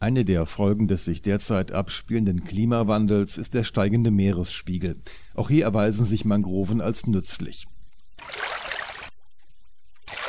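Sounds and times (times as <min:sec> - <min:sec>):
speech: 0:00.0 - 0:08.6
water sloshing as a person wades through shallow water among mangroves: 0:08.2 - 0:09.1.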